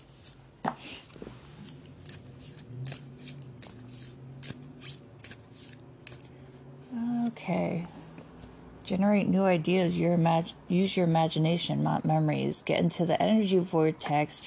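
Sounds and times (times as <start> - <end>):
deck of cards shuffled by hand: 0.0 - 6.3
speech: 7.5 - 7.9, 8.9 - 14.4.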